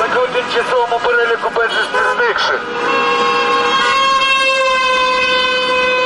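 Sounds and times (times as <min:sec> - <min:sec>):
street noise: 0:00.0 - 0:06.0
car horns honking in support of a rally: 0:01.7 - 0:06.0.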